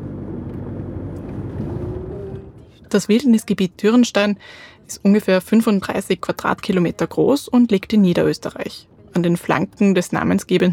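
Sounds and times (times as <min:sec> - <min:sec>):
car engine rumble driving into the forested Dürrenstein wilderness area in Lower Austria: 0:00.0 - 0:02.9
speech: 0:02.9 - 0:10.7.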